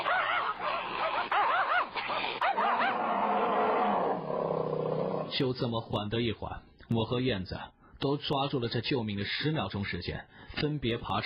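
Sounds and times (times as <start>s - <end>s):
hunting dog snarling and barking aggressively at a bear: 0.0s - 5.4s
speech: 5.4s - 11.2s.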